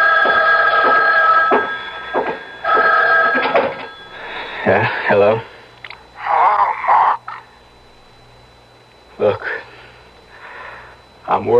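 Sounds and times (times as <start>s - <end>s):
telephone ringing: 0.0s - 7.4s
speech: 4.7s - 5.5s.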